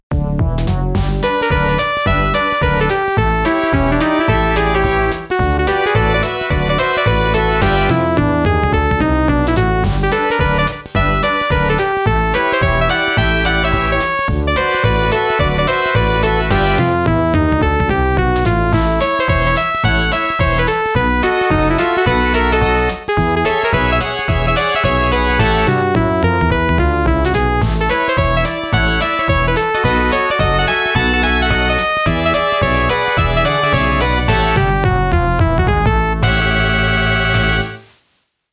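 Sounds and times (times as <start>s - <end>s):
OPL-3 FM synthesizer music: 0.2s - 37.9s.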